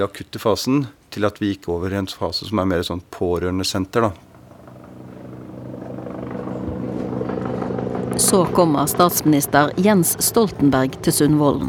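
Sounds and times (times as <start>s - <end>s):
speech: 0.0s - 4.3s, 8.2s - 11.6s
helicopter flying overhead with throbbing rotor hum: 4.2s - 11.6s.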